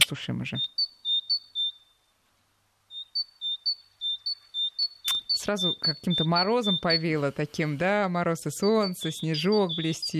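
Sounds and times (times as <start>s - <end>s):
speech: 0.1s - 0.8s, 5.4s - 10.1s
great tit singing two-note song: 0.4s - 2.1s, 2.9s - 10.1s
sharp click: 5.1s - 5.3s.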